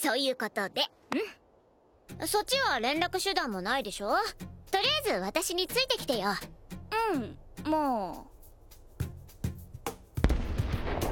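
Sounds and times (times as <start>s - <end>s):
speech: 0.0s - 1.4s, 2.1s - 8.3s
explosive bangs of bombs set off as a marker signal: 10.2s - 11.0s
heavy bomb blast trailing into rumbling crackle: 10.2s - 11.0s.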